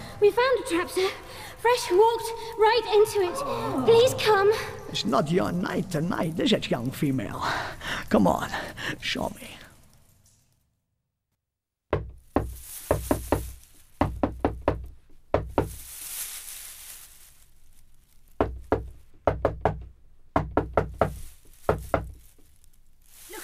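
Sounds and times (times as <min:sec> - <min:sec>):
speech: 0:00.2 - 0:09.6
patterned coded knocking on a door: 0:11.9 - 0:15.7, 0:18.4 - 0:21.1.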